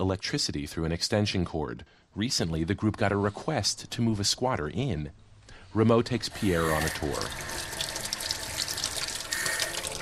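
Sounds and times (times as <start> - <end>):
speech: 0.0 - 7.7
water running from a tap in a vacant house: 6.2 - 9.9.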